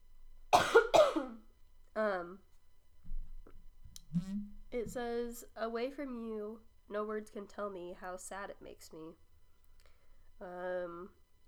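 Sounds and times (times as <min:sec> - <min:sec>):
person coughing: 0:00.6 - 0:01.4
speech: 0:02.0 - 0:02.5, 0:04.1 - 0:09.2, 0:10.4 - 0:11.2.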